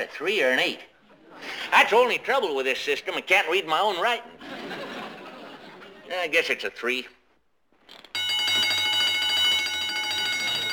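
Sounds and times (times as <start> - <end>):
speech: 0.0 - 4.8, 6.1 - 7.2
laughter: 4.2 - 6.1
burglar alarm electric bell ringing: 8.2 - 10.7.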